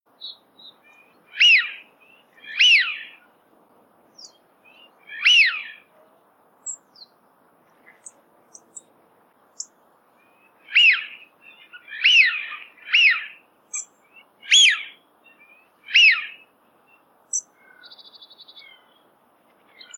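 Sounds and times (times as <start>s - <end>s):
wigeon calling: 0.2s - 3.4s, 4.2s - 5.9s, 10.3s - 19.0s.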